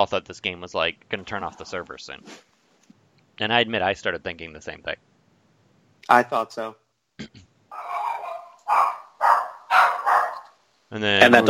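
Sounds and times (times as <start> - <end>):
speech: 0.0 - 2.5, 3.4 - 5.1, 6.1 - 7.5, 10.9 - 11.4
small dog barking: 7.7 - 10.6.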